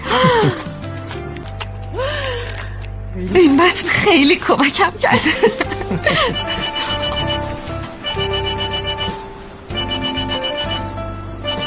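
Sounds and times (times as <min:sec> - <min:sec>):
speech: 0:03.2 - 0:06.6
laughter: 0:05.1 - 0:06.9
phone ringing with a bright melodic electronic ringtone: 0:06.2 - 0:11.6.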